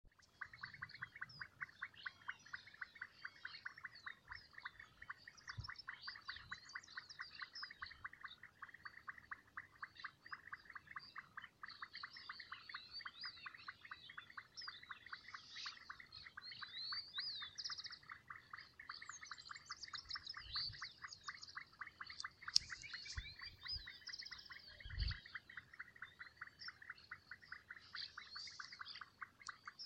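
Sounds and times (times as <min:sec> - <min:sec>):
Leptodactylus gracilis calling: 0:00.1 - 0:29.8.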